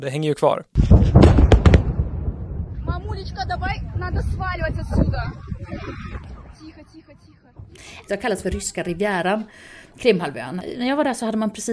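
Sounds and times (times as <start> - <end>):
speech: 0.0 - 1.4, 3.2 - 11.7
sharp cracks: 0.8 - 3.9
large explosions at an air base in Crimea: 0.8 - 8.8
deep continuous rumble: 0.9 - 8.7.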